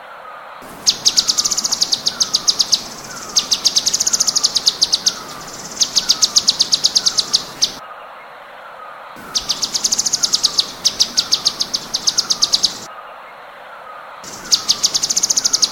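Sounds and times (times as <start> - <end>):
background hiss: 0.5 - 7.8, 8.4 - 12.9, 13.5 - 15.6
cucak cungkok rapid high clicks in tembakan song style: 0.6 - 7.8, 9.2 - 12.9, 14.3 - 15.6.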